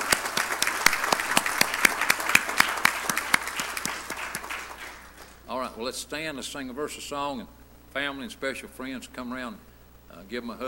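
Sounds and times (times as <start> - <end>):
crowd applauding: 0.0 - 5.4
speech: 5.8 - 10.6.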